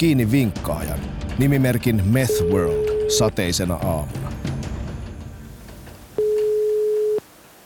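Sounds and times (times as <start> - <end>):
speech: 0.0 - 4.4
telephone ringing tone during call: 2.3 - 3.3, 6.2 - 7.2.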